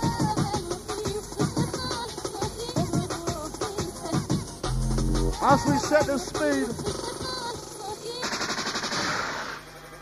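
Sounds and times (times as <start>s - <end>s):
busy music backdrop: 0.0s - 7.6s
speech: 5.4s - 6.9s
machine gun gunfire sound effect: 8.2s - 9.9s.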